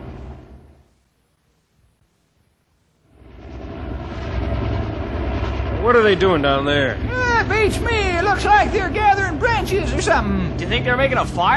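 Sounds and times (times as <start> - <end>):
helicopter hovering: 3.1 - 11.5
speech: 5.9 - 11.5.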